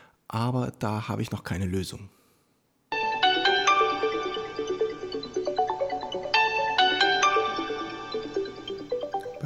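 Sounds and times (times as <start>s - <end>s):
speech: 0.3s - 2.2s
bright electronic telephone ringtone melody rising by a fifth: 2.9s - 9.4s.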